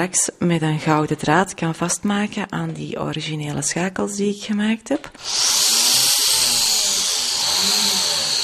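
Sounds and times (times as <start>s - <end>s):
speech: 0.0s - 5.7s
small high-pitched rotary drill boring a freshwater pearl: 5.2s - 8.4s.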